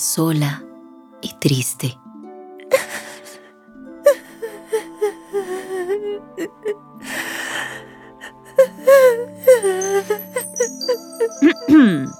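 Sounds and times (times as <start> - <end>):
speech: 0.1 - 2.1
young woman sobbing and wailing: 2.6 - 12.1
gasping breaths: 2.7 - 11.8.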